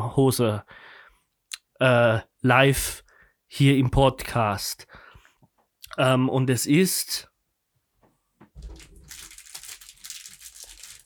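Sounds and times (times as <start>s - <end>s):
speech: 0.1s - 0.9s, 1.8s - 5.0s, 6.0s - 7.3s
biodegradable plastic envelope crinkling and rustling as it is torn open: 8.6s - 11.0s.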